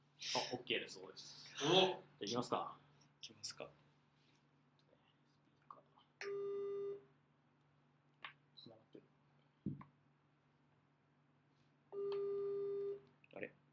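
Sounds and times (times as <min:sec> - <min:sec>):
small noises: 0:00.1 - 0:13.7
speech: 0:00.3 - 0:03.8
telephone ringback tone while placing a call: 0:12.0 - 0:13.0.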